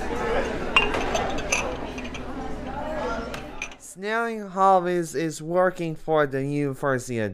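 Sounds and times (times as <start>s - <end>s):
cafeteria kitchen noise: 0.0s - 3.9s
indistinct chatter: 0.0s - 4.0s
glasses clinking while lowered into a dish machine: 0.4s - 3.8s
speech: 4.0s - 7.3s.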